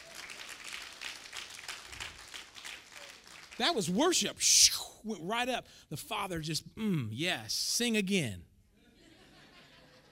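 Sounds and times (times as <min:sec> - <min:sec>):
crowd applauding: 0:00.0 - 0:04.1
speech: 0:03.6 - 0:08.5
laughter: 0:08.8 - 0:10.1.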